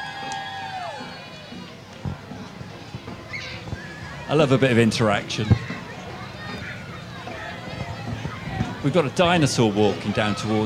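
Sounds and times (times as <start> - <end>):
crowd cheering and clapping for a dance troupe: 0.0 - 1.6
speech: 4.3 - 5.6, 8.8 - 10.6.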